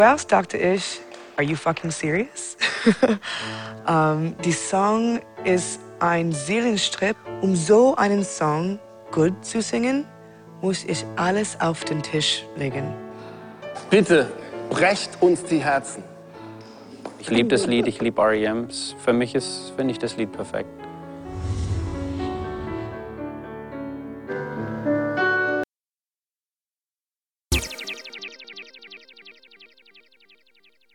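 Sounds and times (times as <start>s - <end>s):
piano: 0.0s - 25.6s.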